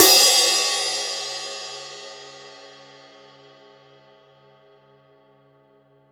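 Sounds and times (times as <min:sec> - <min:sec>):
lingering cymbals: 0:00.0 - 0:02.6.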